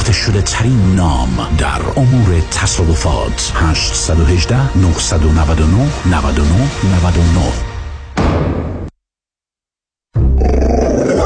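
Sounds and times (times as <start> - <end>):
speech: 0.1 - 8.7
two-year-old pit bull growling and roaring: 10.3 - 11.2.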